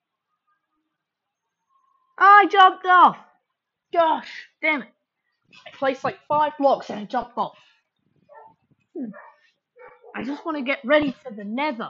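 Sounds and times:
speech: 2.4 - 3.3, 3.9 - 7.7, 9.0 - 9.3, 10.2 - 11.8
dog barking and whining: 8.3 - 10.5.

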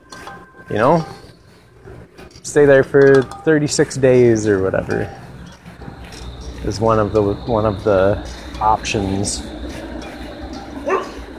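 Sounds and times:
steady low hum: 0.0 - 11.3
speech: 0.7 - 1.2, 2.5 - 5.2, 6.6 - 9.5
high-pitched puppy yip: 10.8 - 11.2.

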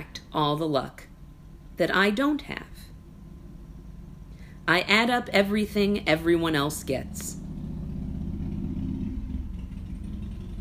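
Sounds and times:
speech: 0.0 - 1.0, 1.8 - 2.9, 4.7 - 7.4
motorcycle engine rumbling outside: 7.4 - 10.5.

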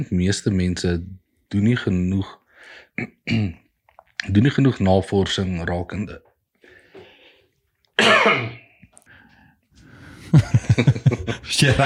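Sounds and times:
speech: 0.0 - 3.6, 4.2 - 6.3, 8.0 - 8.6, 10.3 - 11.8
faint breathing: 2.5 - 3.0, 6.6 - 7.7, 9.0 - 10.4
person coughing fit: 3.0 - 3.6, 8.0 - 8.7
laughter: 10.2 - 11.8.

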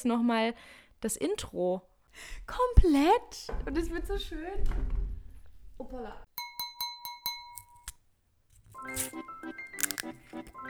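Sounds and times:
speech: 0.0 - 5.0, 5.8 - 6.2, 8.8 - 10.6
wine glasses clinking in a toast: 6.4 - 8.0
music: 8.8 - 10.6.

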